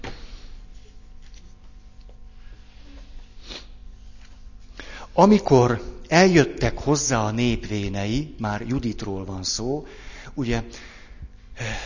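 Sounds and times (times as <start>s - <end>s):
low steady hum: 0.0s - 11.8s
book page being turned: 0.9s - 2.3s
speech: 5.2s - 10.9s.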